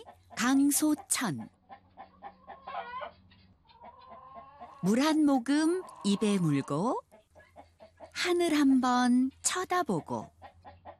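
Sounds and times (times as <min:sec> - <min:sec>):
chicken clucking: 0:00.0 - 0:08.2, 0:09.8 - 0:10.9
speech: 0:00.4 - 0:01.6, 0:04.8 - 0:07.0, 0:08.2 - 0:10.3.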